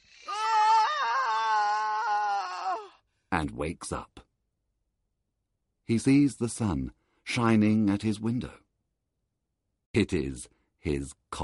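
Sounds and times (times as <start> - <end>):
man screaming: 0.2 - 3.0
speech: 3.4 - 4.2, 5.9 - 8.6, 10.0 - 11.4.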